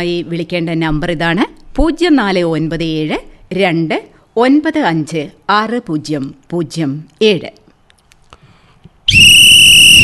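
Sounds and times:
speech: 0.0 - 7.6
referee's whistle blast at football kick-off: 9.1 - 10.0.

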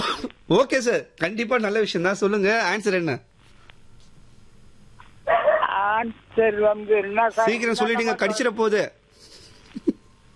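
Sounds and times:
speech: 0.5 - 3.3, 6.0 - 9.9
dog barking in the background: 5.3 - 5.7.

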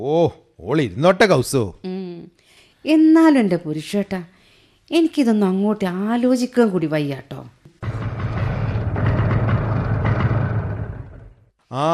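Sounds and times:
speech: 0.0 - 1.9, 2.8 - 4.3, 4.9 - 7.6, 11.7 - 11.9
vehicle engine rumbling as it pulls up in front of a house: 7.7 - 11.5.

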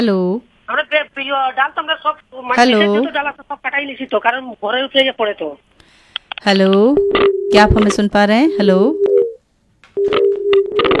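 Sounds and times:
speech: 0.0 - 9.2, 10.0 - 10.9
telephone busy tone after a call is cut off: 7.0 - 7.7, 8.5 - 9.4, 10.0 - 10.9.

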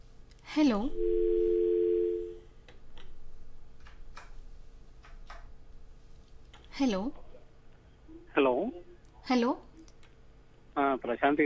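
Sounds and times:
speech: 0.5 - 1.3, 6.8 - 7.2, 8.4 - 9.7, 10.8 - 11.4
phone tone after a call was cut off: 0.9 - 2.4.

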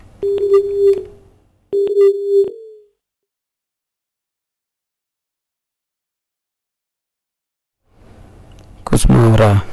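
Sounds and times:
speech: 0.2 - 2.6, 9.0 - 9.7
phone line beeps after a disconnected call: 0.2 - 2.9.

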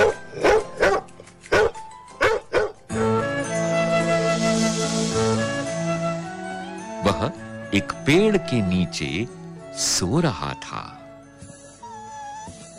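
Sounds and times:
dog barking: 0.0 - 2.8
sustained melodic music with steady tones: 0.0 - 11.9
speech: 7.7 - 11.0.

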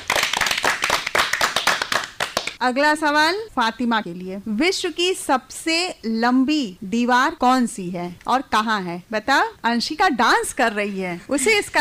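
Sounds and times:
people clapping at a children's quiz: 0.0 - 2.6
speech: 2.6 - 11.7.

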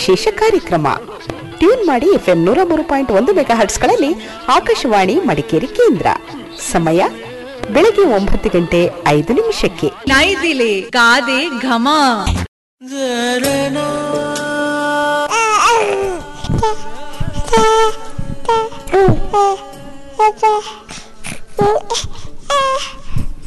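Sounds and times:
speech: 0.0 - 14.3, 19.0 - 20.9, 21.6 - 23.0
nine-month-old baby babbling and crying: 15.2 - 23.2.

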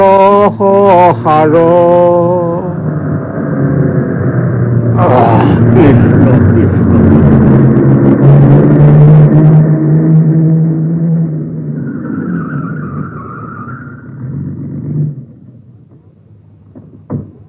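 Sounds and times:
car engine rumble pulling up and stopping at a gateway: 0.0 - 17.4
brief knock: 16.7 - 17.4.

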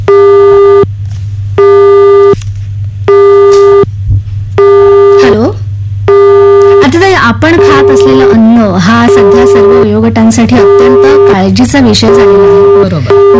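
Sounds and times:
phone busy tone after a cut-off call: 0.0 - 0.9, 1.6 - 2.4, 3.1 - 3.9, 4.6 - 5.4, 6.1 - 7.0, 7.6 - 13.3
low hum: 0.0 - 13.3
speech: 7.4 - 13.3.

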